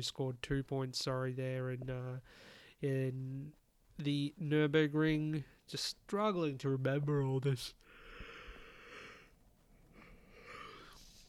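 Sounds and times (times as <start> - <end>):
speech: 0.0 - 7.9
big drawn-out yawn with groaning exhale: 10.0 - 11.2.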